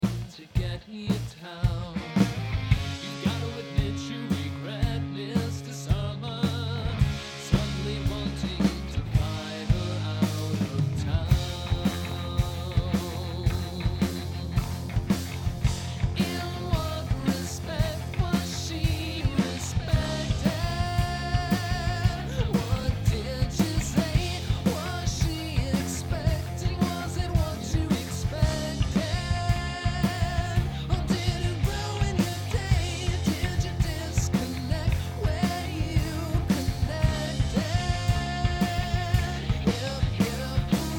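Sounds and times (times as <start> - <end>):
rolling bass: 0.0 - 40.9.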